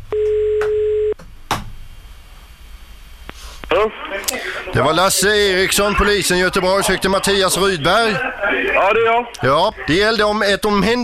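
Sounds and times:
telephone ringing tone: 0.1 - 1.2
speech: 3.7 - 11.0.

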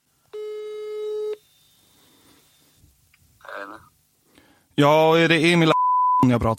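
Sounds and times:
electronic telephone ring tone of an incoming call: 0.4 - 1.4
soft voice-like murmur: 3.4 - 3.9
speech: 4.8 - 6.5.

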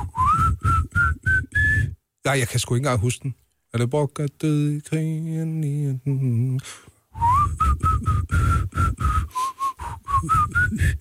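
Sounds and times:
person whistling a short halting tune: 0.0 - 2.0, 7.2 - 10.9
speech: 2.3 - 7.8.

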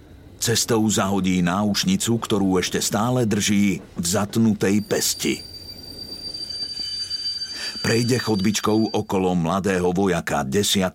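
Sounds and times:
low rumble of a moving railcar: 0.0 - 9.1
speech: 0.4 - 5.5, 7.8 - 10.9
high thin metallic squeal of train wheels grinding on rails: 3.8 - 9.2.

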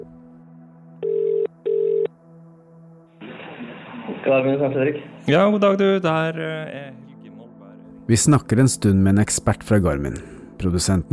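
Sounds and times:
telephone ringing tones: 1.0 - 2.1
speech: 4.2 - 7.0, 8.1 - 11.1.

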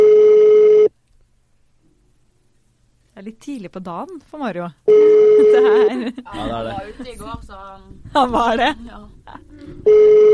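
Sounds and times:
telephone ringback tone while a call connects: 0.0 - 0.9, 4.9 - 5.8, 9.9 - 10.3
speech: 3.4 - 10.3
laughter: 4.9 - 7.3, 8.1 - 9.8.

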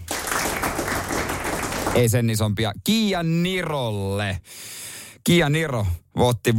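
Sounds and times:
crowd applause: 0.0 - 2.0
speech: 2.0 - 6.5.

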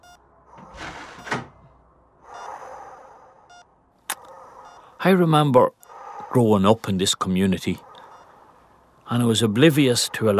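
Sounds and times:
door swinging and bumping shut: 0.6 - 1.7
speech: 5.0 - 7.9, 9.1 - 10.3.

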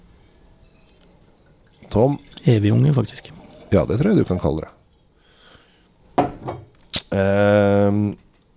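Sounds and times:
2020 Tempranillo Blanco wine poured into a glass: 0.6 - 5.0
speech: 1.8 - 4.8, 7.2 - 8.2.

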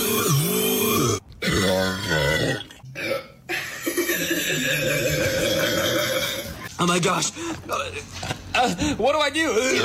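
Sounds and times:
long loud gravelly burps after chugging lemon-lime soda: 0.0 - 6.7
speech: 6.8 - 9.8.

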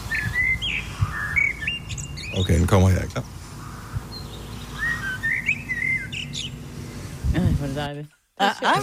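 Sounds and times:
hiss: 0.0 - 8.8
blackbird whistling a pop song melody: 0.1 - 2.4, 4.1 - 6.6
speech: 2.3 - 3.4, 7.8 - 8.8.

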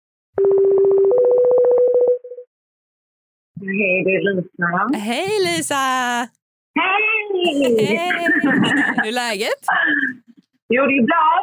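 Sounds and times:
outgoing phone call tone: 0.4 - 2.3
speech: 3.6 - 11.4
laughter: 7.5 - 9.8.

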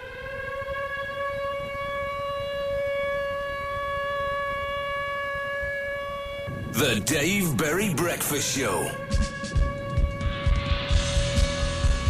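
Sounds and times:
loud steady siren wail: 0.0 - 11.9
booming bass-boosted music from a 1992 recording: 6.7 - 12.0
speech: 6.8 - 9.6.

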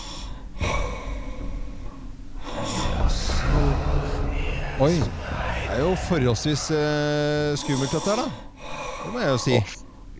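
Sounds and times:
steady hiss of noise: 0.0 - 10.1
sleeping person snoring with rasping breaths: 2.5 - 8.1
speech: 4.8 - 5.2, 5.8 - 9.8.

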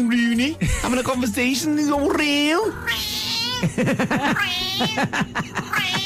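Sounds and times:
speech: 0.0 - 6.0
cat meowing: 2.7 - 3.6, 4.4 - 5.0, 5.7 - 6.0
laughter: 3.6 - 6.0.

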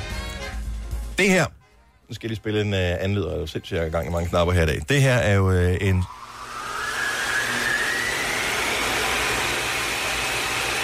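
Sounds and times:
speech: 1.2 - 6.2
powerful vacuum cleaner running: 5.9 - 10.8.

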